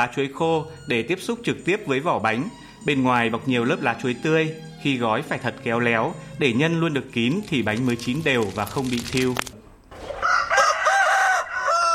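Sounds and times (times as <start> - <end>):
speech: 0.0 - 9.5
rooster crowing at dawn: 10.0 - 11.9.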